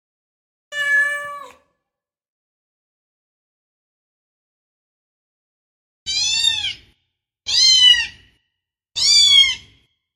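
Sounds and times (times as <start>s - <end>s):
cat meowing: 0.7s - 1.7s, 6.1s - 6.9s, 7.5s - 8.3s, 9.0s - 9.8s.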